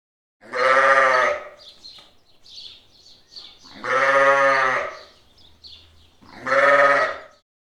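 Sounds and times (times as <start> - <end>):
sheep bleating: 0.4 - 1.7, 3.4 - 5.2, 6.2 - 7.4
faint birds chirping: 1.1 - 7.4.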